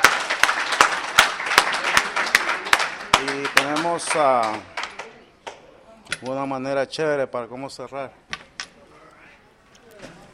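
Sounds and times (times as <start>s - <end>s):
audience applauding: 0.0s - 5.1s
set of sharp claps: 0.0s - 5.6s
speech: 3.2s - 4.7s, 6.1s - 8.2s.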